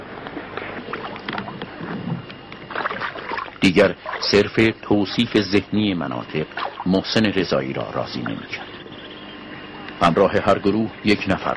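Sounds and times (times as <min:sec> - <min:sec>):
steady wash of water moving around a wooden boat hull: 0:00.0 - 0:07.3
soft splashes and gurgles from paddle strokes of a wooden boat: 0:00.3 - 0:04.5, 0:06.5 - 0:06.9
speech: 0:03.6 - 0:08.7, 0:10.0 - 0:11.5.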